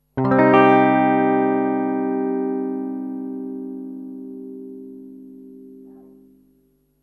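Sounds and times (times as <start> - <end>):
minor chords in C minor: 0.0 - 6.8.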